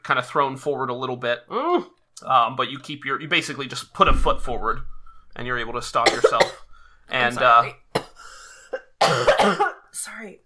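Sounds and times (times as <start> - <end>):
speech: 0.1 - 7.8, 9.0 - 9.6, 10.2 - 10.4
person coughing after choking on a sip of water: 6.0 - 6.8, 8.0 - 9.8.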